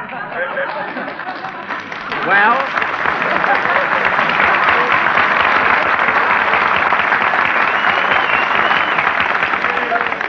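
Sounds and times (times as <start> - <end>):
laughter: 0.0 - 9.0
large audience applauding: 0.0 - 10.2
speech: 0.4 - 3.8.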